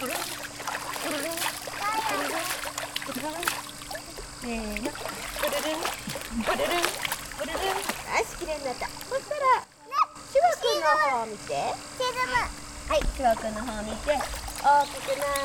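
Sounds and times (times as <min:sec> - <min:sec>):
water splashing while washing a baby's face in a bath: 0:00.0 - 0:09.4, 0:13.1 - 0:15.4
speech: 0:04.4 - 0:07.0, 0:11.2 - 0:15.4.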